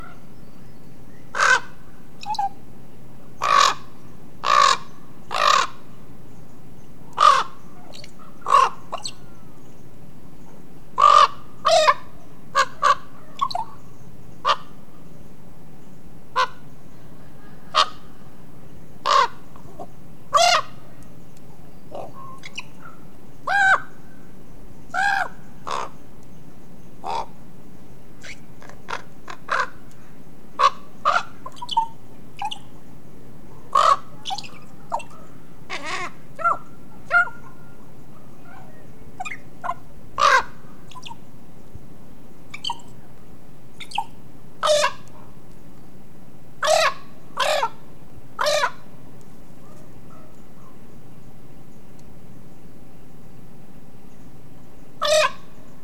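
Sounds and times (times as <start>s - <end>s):
common raven: 1.3s - 2.6s, 3.3s - 6.1s, 7.0s - 9.6s, 11.0s - 15.0s, 16.3s - 26.1s, 27.0s - 27.4s, 28.2s - 41.3s, 42.5s - 43.2s, 43.8s - 45.4s, 46.6s - 51.0s, 55.0s - 55.6s.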